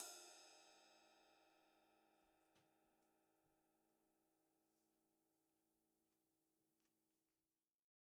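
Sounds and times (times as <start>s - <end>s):
ride cymbal on a drum kit: 0.0s - 1.6s.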